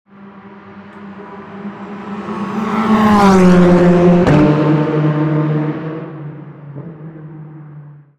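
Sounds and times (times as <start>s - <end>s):
TCR car passing: 0.1s - 8.1s.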